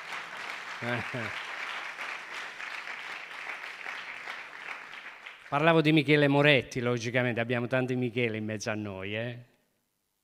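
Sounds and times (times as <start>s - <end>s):
audience clapping: 0.0s - 6.0s
speech: 0.8s - 1.5s, 5.5s - 9.5s.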